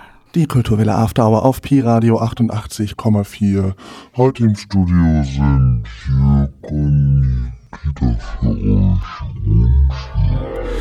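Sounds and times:
speech: 0:00.4 - 0:10.7
human voice slowed down by a delay effect into a deep rumbling growl: 0:05.3 - 0:10.7.

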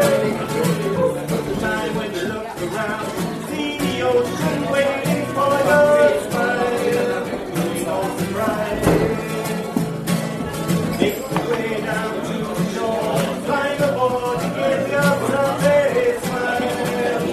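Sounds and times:
overlapping conversation in a lively bar: 0:00.0 - 0:17.3.

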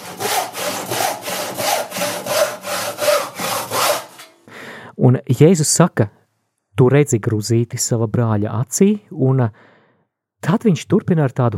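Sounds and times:
hand saw cutting through wood in a workshop: 0:00.0 - 0:04.4
speech: 0:05.0 - 0:06.2, 0:06.8 - 0:09.8, 0:10.4 - 0:11.5.

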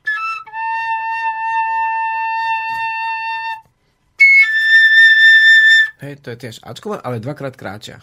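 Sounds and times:
small folk fipple whistle playing notes: 0:00.0 - 0:03.6, 0:04.2 - 0:06.0
speech: 0:06.0 - 0:08.0.

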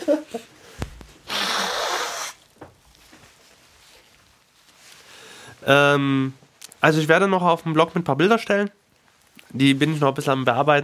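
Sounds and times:
speech: 0:00.1 - 0:00.5, 0:05.7 - 0:08.8, 0:09.5 - 0:10.8
quiet rustling: 0:00.3 - 0:01.3, 0:02.4 - 0:10.6
nose blowing: 0:00.8 - 0:02.5.

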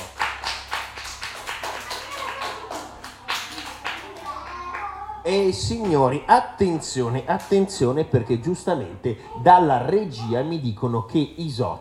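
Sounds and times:
audience applauding: 0:00.0 - 0:05.0
speech: 0:05.2 - 0:11.7.

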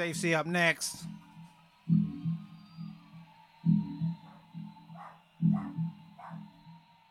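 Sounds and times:
speech: 0:00.0 - 0:01.2
dog barking with deep woofs: 0:04.2 - 0:06.6.

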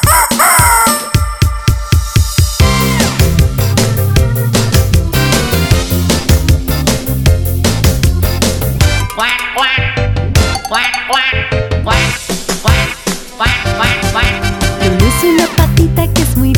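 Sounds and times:
rooster crowing: 0:00.0 - 0:01.2
duck quacking: 0:00.0 - 0:01.4, 0:08.2 - 0:14.8
bouncy rhythmic musical backing with steady beats: 0:00.0 - 0:16.5.

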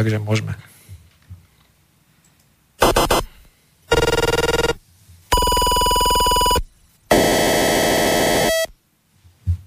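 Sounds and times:
speech: 0:00.0 - 0:00.7
decoded 433 MHz pulse-width-modulated radio data signals from weather station, remote and key fob: 0:02.8 - 0:08.8.

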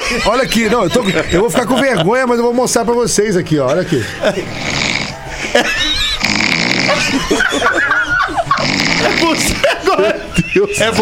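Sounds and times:
people laughing: 0:00.0 - 0:02.6, 0:03.4 - 0:10.9
speech: 0:00.1 - 0:04.8, 0:05.5 - 0:05.8, 0:09.0 - 0:10.9
loud rasping snoring: 0:04.4 - 0:05.3, 0:06.1 - 0:07.4, 0:08.5 - 0:09.6.

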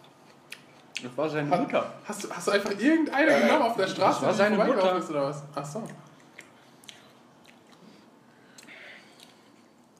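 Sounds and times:
speech: 0:01.0 - 0:06.1
loud open-mouthed chewing: 0:06.1 - 0:09.9.

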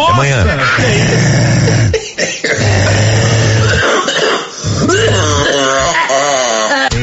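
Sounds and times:
speech: 0:00.0 - 0:03.5
laughter: 0:00.0 - 0:04.0, 0:05.8 - 0:07.0
person in a fit of harsh coughing: 0:00.2 - 0:07.0
strained wheezy voiced gasps: 0:00.6 - 0:05.4.

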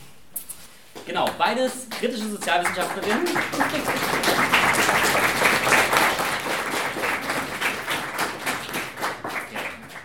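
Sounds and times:
speech: 0:01.1 - 0:05.8
audience applauding for two invited social scientists: 0:01.1 - 0:10.0.

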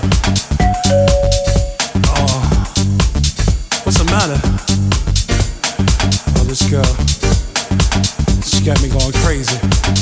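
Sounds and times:
loud rhythmic music with a heavy beat: 0:00.0 - 0:09.9
electronic doorbell ringing: 0:00.6 - 0:02.1.

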